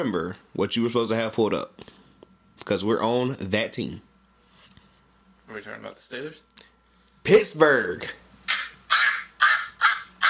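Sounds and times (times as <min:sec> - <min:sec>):
speech: 0:00.0 - 0:02.0, 0:02.6 - 0:04.1, 0:05.5 - 0:08.2
duck quacking: 0:08.5 - 0:10.2.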